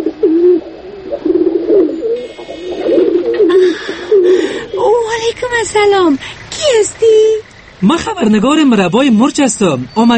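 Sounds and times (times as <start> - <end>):
white pigeon with a broken leg cooing in a corner in Kabul: 0.0 - 6.1
noise: 0.0 - 10.1
speech: 5.6 - 10.1.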